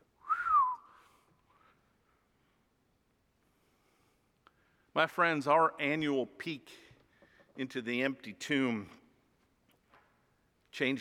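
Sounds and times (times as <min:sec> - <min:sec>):
amazed human whistle with descending glide: 0:00.2 - 0:01.7
speech: 0:05.0 - 0:06.8, 0:07.6 - 0:09.0, 0:10.8 - 0:10.9.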